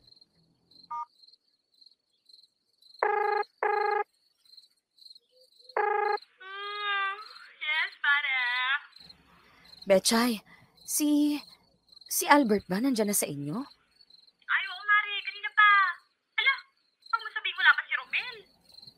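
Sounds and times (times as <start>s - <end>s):
crickets chirping: 0.0s - 18.9s
telephone ringing on an outgoing call: 3.0s - 4.1s, 5.8s - 6.2s
speech: 9.9s - 11.5s, 12.1s - 13.8s.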